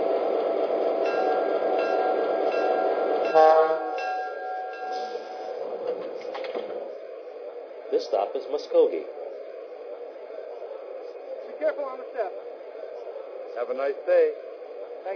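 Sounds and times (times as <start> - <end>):
passenger train rumbling as it arrives at the station: 0.0 - 15.1
loud horn-like tone with several harmonic notes: 3.2 - 4.0
speech: 8.1 - 9.2, 13.6 - 14.4.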